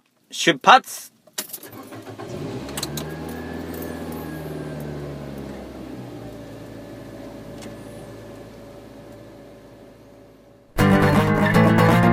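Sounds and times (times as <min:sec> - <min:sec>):
speech: 0:00.3 - 0:01.1
road noise: 0:01.7 - 0:10.8
car engine humming inside the cabin of a Cube Cubic car: 0:01.9 - 0:12.0.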